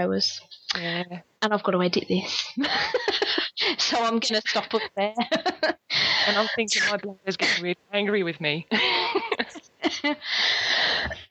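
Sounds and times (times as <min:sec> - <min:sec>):
speech: 0:00.0 - 0:10.7
laughter: 0:02.3 - 0:06.9, 0:08.7 - 0:10.4
person coughing from a dry throat: 0:06.4 - 0:07.7, 0:11.0 - 0:11.3.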